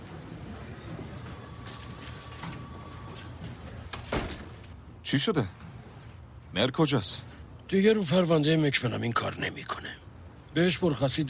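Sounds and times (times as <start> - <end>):
steady noise: 0.0 - 11.2
office door pushed shut: 3.9 - 4.6
speech: 5.1 - 5.6, 6.6 - 11.2.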